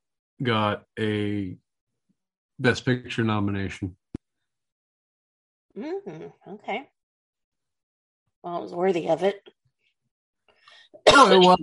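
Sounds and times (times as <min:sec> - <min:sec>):
speech: 0:00.4 - 0:01.6, 0:02.6 - 0:04.0, 0:05.8 - 0:07.0, 0:08.4 - 0:09.6, 0:11.0 - 0:11.6
cough: 0:11.0 - 0:11.5.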